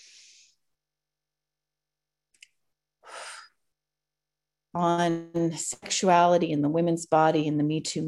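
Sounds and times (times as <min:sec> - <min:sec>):
person breathing in through the nose and out through the mouth: 0:00.0 - 0:00.6, 0:03.0 - 0:03.6
speech: 0:04.8 - 0:08.0.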